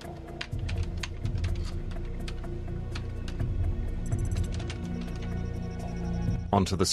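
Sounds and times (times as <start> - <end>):
typing on a computer keyboard in a basement office: 0.0 - 3.5, 4.1 - 5.4
speech: 6.5 - 6.9.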